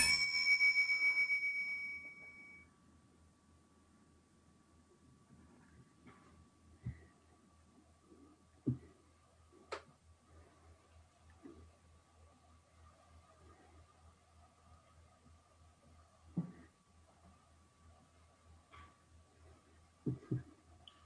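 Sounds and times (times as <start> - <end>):
single bright chime marking start of timed silence: 0.0 - 2.7
soft bumps: 20.0 - 20.6.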